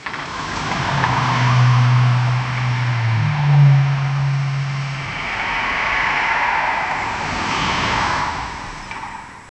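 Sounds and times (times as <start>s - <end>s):
car driving slowly: 0.0s - 9.5s.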